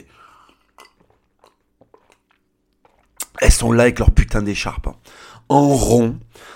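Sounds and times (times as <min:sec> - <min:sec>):
person sipping and swallowing a beverage: 0:00.3 - 0:03.4
speech: 0:03.4 - 0:06.5.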